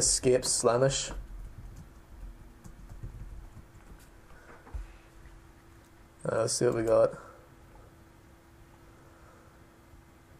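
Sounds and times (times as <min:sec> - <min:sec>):
speech: 0:00.0 - 0:01.3, 0:06.2 - 0:07.3
low electrical hum: 0:00.0 - 0:10.3
keyboard typing: 0:01.2 - 0:04.4.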